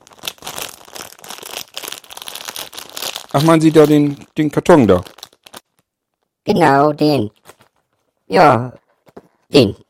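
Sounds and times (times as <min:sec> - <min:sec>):
plastic bag with an item inside crinkling as it is handed over: 0:00.0 - 0:05.8, 0:07.3 - 0:08.1
speech: 0:03.4 - 0:05.1, 0:06.5 - 0:07.4, 0:08.3 - 0:08.8, 0:09.5 - 0:09.8.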